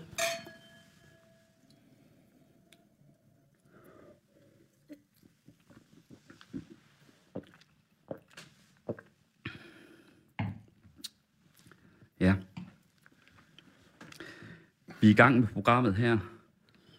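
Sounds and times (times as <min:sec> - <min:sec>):
wine glasses clinking in a toast: 0:00.0 - 0:01.5
speech: 0:15.0 - 0:16.4.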